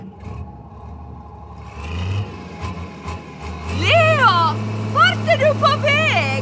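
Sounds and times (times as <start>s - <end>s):
heavy excavator engine revving and idling at a meadow: 0.0s - 6.4s.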